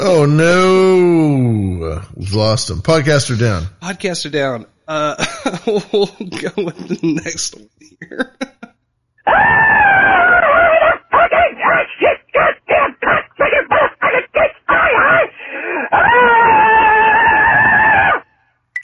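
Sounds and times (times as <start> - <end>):
speech: 0.0 - 1.3, 2.0 - 8.6
laughter: 5.0 - 8.7, 10.0 - 16.7
loud demonic-sounding scream: 9.2 - 11.7, 14.8 - 18.3.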